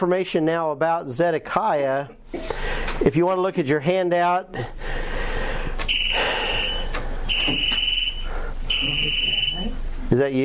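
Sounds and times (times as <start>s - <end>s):
speech: 0.0s - 5.1s, 10.1s - 10.4s
tornado warning alert tone high-pitched electronic beeps: 5.9s - 9.8s.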